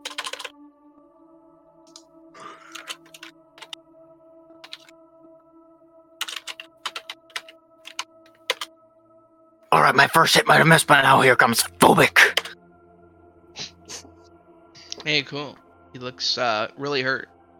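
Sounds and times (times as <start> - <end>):
typing on a computer keyboard: 0.0 - 0.5, 2.7 - 3.8, 4.6 - 4.9, 6.2 - 8.7, 12.3 - 12.5
speech: 9.9 - 12.3, 15.1 - 17.4.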